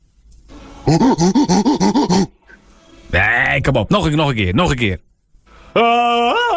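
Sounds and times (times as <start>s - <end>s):
person on the telephone imitating monkey hooting calls: 0.8s - 2.4s
speech: 1.0s - 1.6s, 3.6s - 5.1s, 5.8s - 6.4s.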